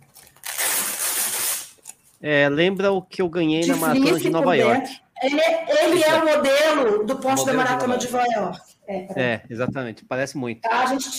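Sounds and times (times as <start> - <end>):
velcro fastener on a waterproof item pulled open: 0.0 - 2.0
speech: 2.2 - 11.1.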